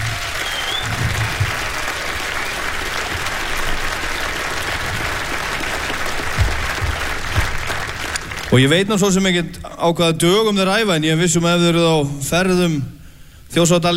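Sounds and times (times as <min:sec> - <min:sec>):
audience applauding a band with dense sustained clapping: 0:00.0 - 0:09.1
speech: 0:08.5 - 0:13.9.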